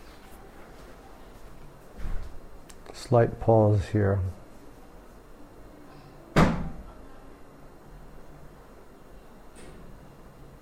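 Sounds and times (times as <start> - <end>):
speech: 3.1 - 4.4
solid door shutting with a sharp thump: 9.5 - 10.0.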